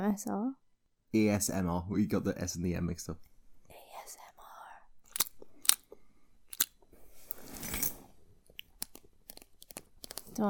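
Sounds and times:
speech: 0.0 - 3.3
teeth grinding: 5.0 - 6.8, 8.5 - 10.4.

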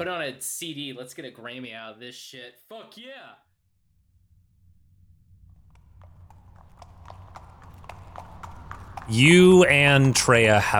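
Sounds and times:
speech: 0.0 - 3.5, 9.1 - 10.7
horses' hooves clip-clopping through tunnels: 5.6 - 10.7.

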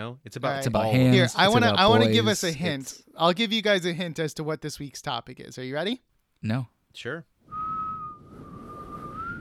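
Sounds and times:
speech: 0.0 - 7.6
person whistling a short clear high note: 7.5 - 9.4.

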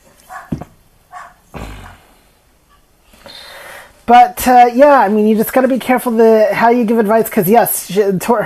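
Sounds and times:
household dogs barking with sharp yaps and woofs: 0.2 - 2.1
speech: 4.1 - 8.4.

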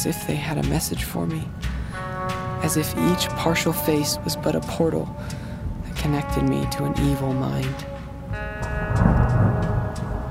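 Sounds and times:
speech: 0.0 - 1.7, 2.6 - 5.4, 6.0 - 7.9
distant thunder boom: 8.7 - 10.2.

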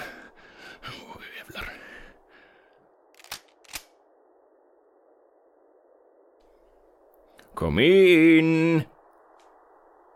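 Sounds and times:
rustling clattery shotgun handling: 3.1 - 4.0
speech: 7.6 - 8.9.

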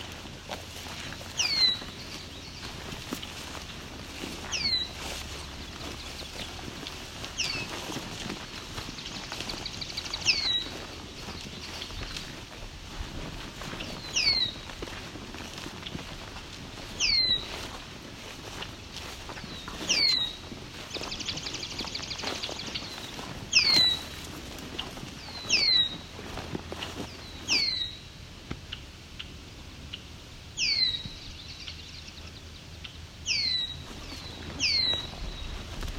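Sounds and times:
steady outdoor rustle: 0.0 - 35.9
red-winged blackbird singing: 1.3 - 2.7, 4.3 - 5.1, 5.7 - 12.1, 13.9 - 14.7, 16.9 - 17.7, 19.3 - 24.2, 25.2 - 26.0, 27.1 - 28.0, 28.7 - 35.6.

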